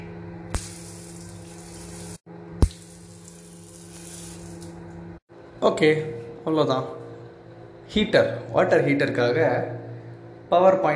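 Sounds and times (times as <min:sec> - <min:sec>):
handheld bidet spray hose beside a toilet gushing water: 0:00.6 - 0:04.8
speech: 0:05.6 - 0:07.0, 0:07.9 - 0:09.8, 0:10.5 - 0:10.9.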